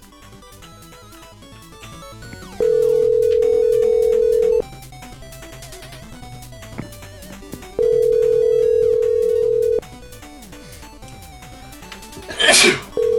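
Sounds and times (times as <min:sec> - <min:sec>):
steady electronic telephone tone: 0:02.5 - 0:04.6, 0:07.8 - 0:09.8, 0:12.9 - 0:13.1
person sneezing: 0:12.3 - 0:13.0.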